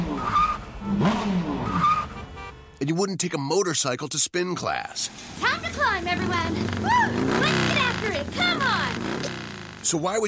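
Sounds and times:
race car tires skidding: 0:00.0 - 0:02.3, 0:05.1 - 0:10.0
speech: 0:02.9 - 0:09.2, 0:09.9 - 0:10.2.

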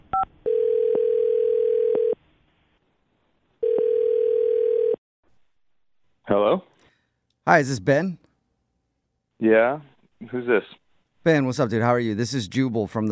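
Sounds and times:
telephone line dial tone: 0:00.1 - 0:02.1, 0:03.6 - 0:05.0
speech: 0:07.5 - 0:08.2, 0:09.4 - 0:13.1.

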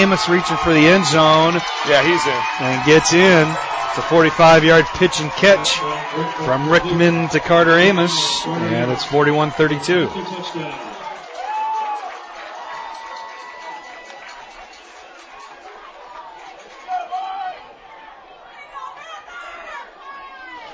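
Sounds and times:
speech: 0:00.0 - 0:11.0
crowd members shouting at a high school football game: 0:00.0 - 0:12.1
home crowd chattering and calling out at a high school football game: 0:00.0 - 0:12.9, 0:14.2 - 0:20.7.

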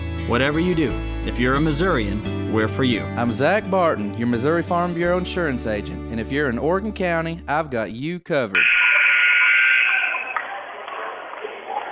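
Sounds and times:
speech: 0:00.3 - 0:08.8
loud harsh electronic buzzer in high school gym at basketball game: 0:08.6 - 0:10.5
hum and chatter of large indoor crowd in gym: 0:10.1 - 0:11.9.

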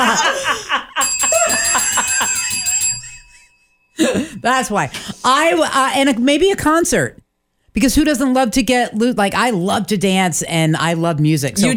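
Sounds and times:
people laughing: 0:00.0 - 0:04.2
small bell ringing: 0:01.0 - 0:04.3
speech: 0:04.0 - 0:07.2, 0:07.8 - 0:11.7.

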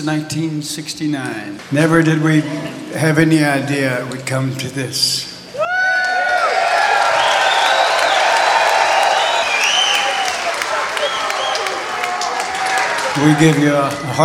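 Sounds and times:
speech: 0:00.0 - 0:05.3, 0:13.2 - 0:14.2
scattered whoops from concert crowd: 0:05.5 - 0:13.1
sold-out concert crowd clapping: 0:05.9 - 0:14.2
sharp whistles from concert crowd: 0:07.2 - 0:11.8.

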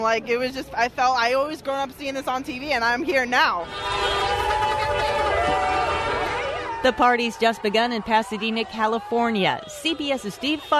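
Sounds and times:
speech: 0:00.0 - 0:05.1, 0:06.8 - 0:10.7
large crowd cheering and shouting in the street: 0:03.8 - 0:10.5.

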